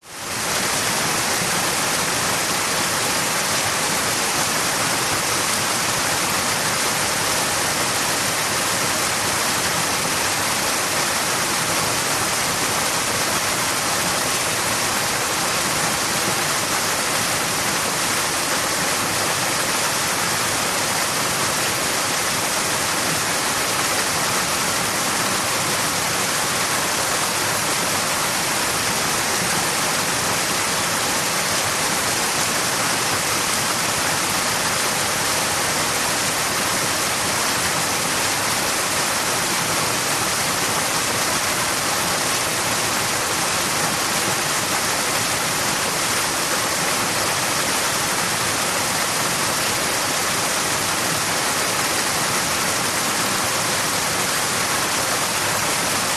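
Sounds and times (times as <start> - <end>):
waterfall: 0.0 - 56.1.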